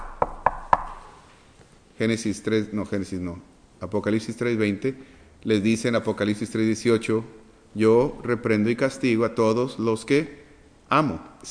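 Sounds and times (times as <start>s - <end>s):
knocking on a door: 0.0s - 1.0s
speech: 2.0s - 11.5s.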